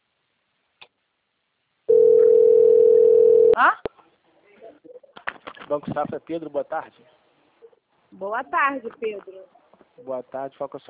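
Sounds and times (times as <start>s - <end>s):
telephone ringing tone while placing a call to a bank: 1.9s - 3.6s
speech: 5.7s - 7.2s, 8.1s - 10.8s.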